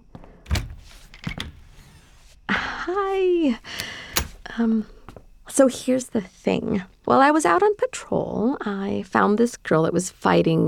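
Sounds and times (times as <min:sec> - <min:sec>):
door handle and latch clicks: 0:00.5 - 0:02.3, 0:03.6 - 0:05.4
door being unlatched and opened: 0:00.5 - 0:05.6
speech: 0:02.9 - 0:03.8, 0:04.6 - 0:05.0, 0:05.6 - 0:10.6.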